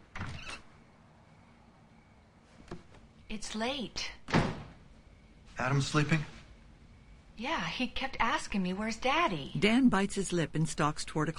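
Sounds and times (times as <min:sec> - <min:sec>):
bedroom door opening: 0:00.0 - 0:00.8
speech: 0:03.3 - 0:04.4, 0:05.6 - 0:06.4, 0:07.4 - 0:11.3.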